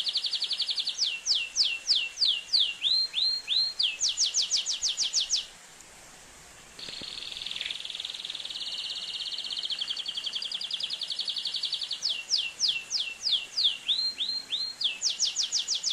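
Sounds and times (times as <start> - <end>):
Atlantic canary song: 0.0 - 5.5, 6.8 - 15.9.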